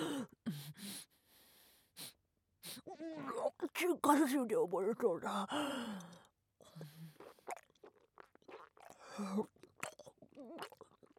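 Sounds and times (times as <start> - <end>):
speech: 3.0 - 6.2, 9.2 - 9.6
wet crunchy chewing of something that dissolves in the mouth: 7.1 - 11.1.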